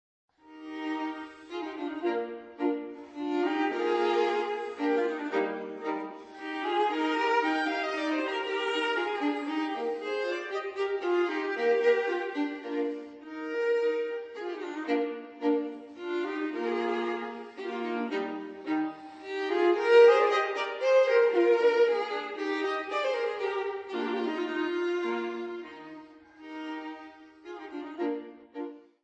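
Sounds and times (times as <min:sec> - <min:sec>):
violin and viola duo playing a minuet: 0:00.4 - 0:29.0.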